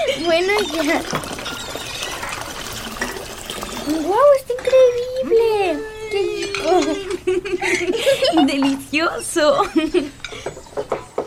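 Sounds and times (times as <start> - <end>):
speech: 0.2 - 1.5, 3.9 - 10.2
raspberry juice poured at a natural juice stand: 0.3 - 4.6
laughter: 6.6 - 8.9, 9.5 - 10.5.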